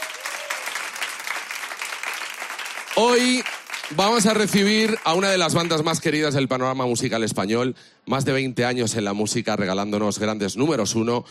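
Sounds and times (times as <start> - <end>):
audience applauding: 0.0 - 6.0
speech: 3.0 - 11.3.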